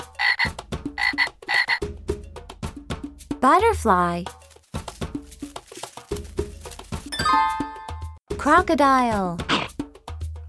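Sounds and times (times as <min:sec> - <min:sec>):
frog croaking in rasping buzzy calls: 0:00.0 - 0:01.8
speech: 0:03.4 - 0:04.4, 0:08.5 - 0:09.5.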